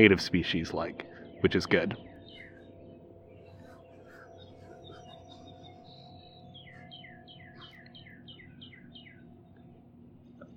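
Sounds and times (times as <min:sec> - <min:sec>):
speech: 0:00.0 - 0:02.1
male cardinal singing clear downslurred whistled notes: 0:00.0 - 0:09.8
faint bird chirps: 0:00.0 - 0:10.5.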